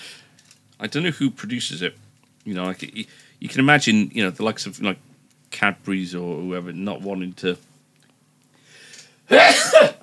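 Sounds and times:
speech: 0.8s - 7.7s, 9.3s - 10.0s
loud sneeze: 9.3s - 10.0s.

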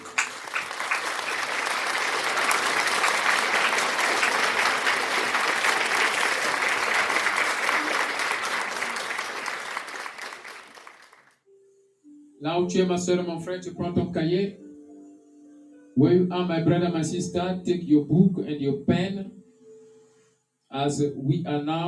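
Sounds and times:
audience applause: 0.0s - 11.4s
speech: 12.6s - 14.6s, 16.0s - 19.4s, 20.8s - 21.8s.

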